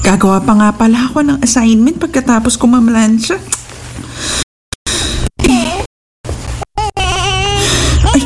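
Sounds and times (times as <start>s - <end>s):
speech: 0.1s - 3.6s
baby crying: 6.7s - 8.2s.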